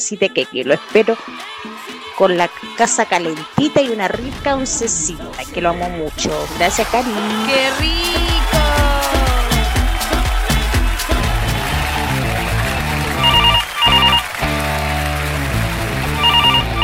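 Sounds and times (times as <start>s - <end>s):
steady music: 0.0s - 16.8s
speech: 0.1s - 8.6s
telephone ringing: 13.2s - 14.3s, 16.2s - 16.8s.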